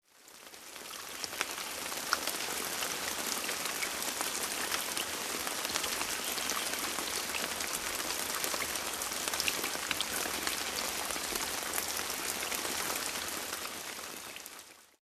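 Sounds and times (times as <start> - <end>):
rain: 0.0 - 15.0.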